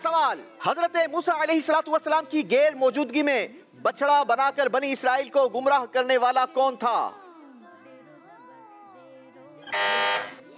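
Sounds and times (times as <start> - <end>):
speech: 0.1 - 7.2
quiz-competition buzzer pressed: 9.7 - 10.4.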